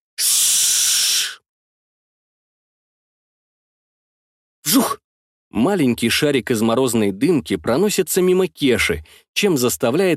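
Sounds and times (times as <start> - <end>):
giant caterpillar monster hissing as it lunges: 0.2 - 1.4
speech: 4.7 - 10.1.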